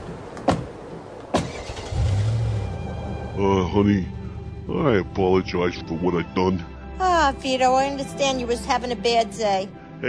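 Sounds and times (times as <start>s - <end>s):
car doors shutting: 0.3s - 2.6s
car engine starting and humming as the car drives off in cold weather: 1.4s - 6.4s
speech: 3.4s - 10.0s.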